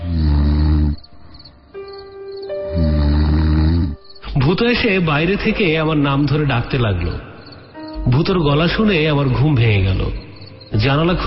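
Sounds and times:
person snoring asleep at night: 0.0 - 1.0, 2.7 - 4.1
speech: 4.5 - 7.3, 8.1 - 11.2.

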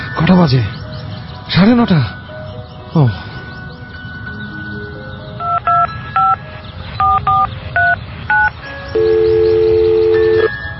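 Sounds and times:
speech: 0.2 - 0.8, 1.5 - 2.1, 2.9 - 3.3
mobile phone ringing with an electronic melody: 5.4 - 6.4, 7.0 - 10.7.

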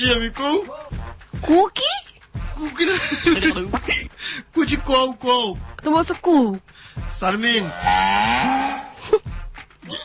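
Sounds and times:
speech: 0.0 - 9.3
laughter: 2.9 - 4.2, 9.0 - 9.3
cow mooing: 7.7 - 9.0.

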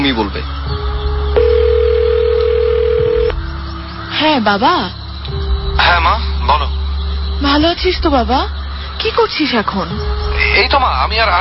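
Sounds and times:
speech: 0.1 - 0.8, 4.2 - 5.0, 5.8 - 6.8, 7.4 - 11.4
steady mid-pitched telephone tone as a call is placed: 1.4 - 3.4.

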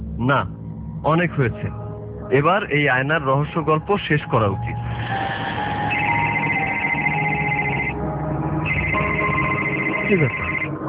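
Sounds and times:
speech: 0.2 - 5.2, 10.1 - 10.4
telephone ringing: 5.8 - 8.0, 8.6 - 10.7.

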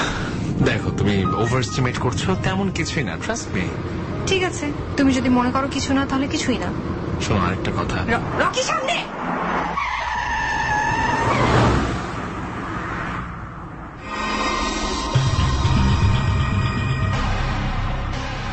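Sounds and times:
rough car engine and road noise: 0.0 - 18.5
speech: 0.6 - 9.2
car tires squealing while skidding to a sudden stop: 8.4 - 15.7.

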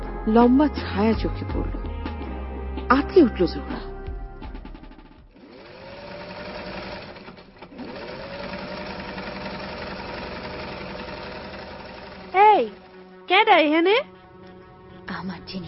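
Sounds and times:
speech: 0.2 - 1.8, 2.9 - 3.9, 13.4 - 14.1, 15.5 - 15.6
sewing machine running in a study room: 5.3 - 13.4.

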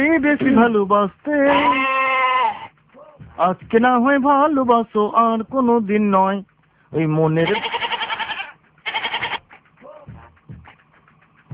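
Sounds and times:
speech: 0.0 - 2.0, 3.4 - 7.8
goats kept at a home bleating: 1.4 - 2.7, 7.4 - 9.5.

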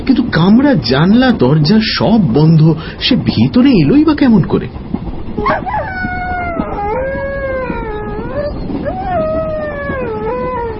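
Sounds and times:
speech: 0.1 - 5.8
injured dog yelping and crying in pain: 5.4 - 10.7.

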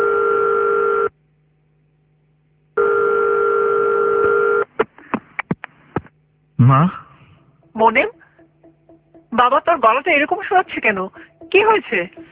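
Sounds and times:
telephone dial tone: 0.0 - 1.1, 2.8 - 4.6
speech: 6.6 - 7.0, 7.8 - 8.2, 9.4 - 12.3.

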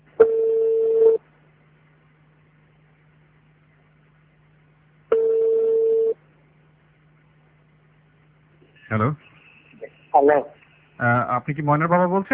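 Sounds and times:
faint low hum: 0.0 - 12.3
long steady telephone tones as a phone call is placed: 0.2 - 1.2, 5.1 - 6.2
speech: 8.9 - 9.3, 10.2 - 12.3.

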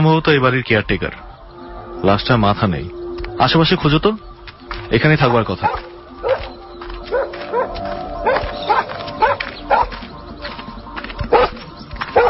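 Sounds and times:
speech: 0.0 - 1.2, 2.0 - 4.3, 4.9 - 5.9
aggressive pet dog barking near a dog house: 5.6 - 6.5, 7.1 - 10.0, 11.3 - 12.2.

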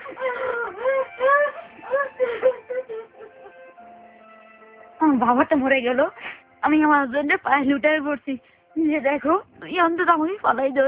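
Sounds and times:
grieving woman crying in wails and sobs: 0.0 - 3.8
speech: 5.2 - 10.8.

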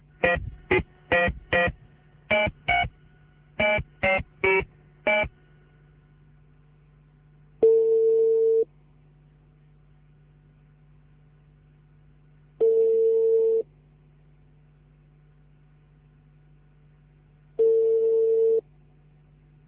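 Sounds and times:
single sustained steady telephone tone: 0.2 - 2.9, 3.6 - 5.3, 7.6 - 8.7, 12.6 - 13.6, 17.6 - 18.6.

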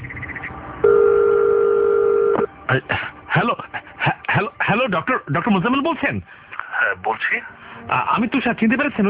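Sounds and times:
steady loud two-pitched electronic telephone tone: 0.9 - 2.5
telephone beeps and clicks as a call is placed: 0.9 - 2.5
speech: 2.7 - 3.7, 4.9 - 9.0.

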